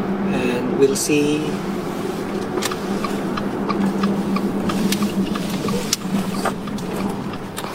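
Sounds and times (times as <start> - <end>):
car engine humming while driving slowly to park: 0.0 - 7.7
road rumble: 0.0 - 7.7
speech: 0.8 - 1.8
light clicks and ticks: 2.4 - 7.7.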